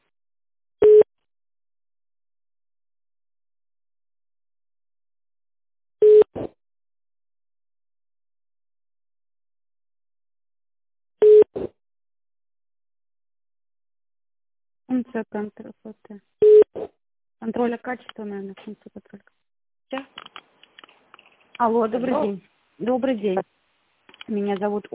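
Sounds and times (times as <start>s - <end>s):
telephone line beeps while an office call is transferred: 0.8s - 1.1s, 6.0s - 6.3s, 11.2s - 11.5s, 16.4s - 16.7s
speech: 14.9s - 20.4s, 21.6s - 23.5s, 24.3s - 24.9s.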